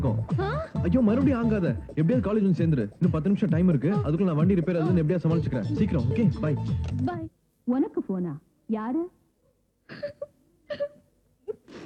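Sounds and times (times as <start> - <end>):
speech: 0.0 - 9.2, 9.9 - 10.9
person sobbing in grief: 0.3 - 0.9.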